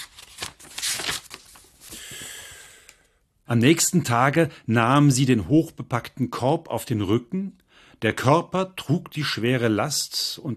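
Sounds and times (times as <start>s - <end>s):
pages of a novel rustling and flipping: 0.0s - 2.2s
speech: 3.5s - 10.5s.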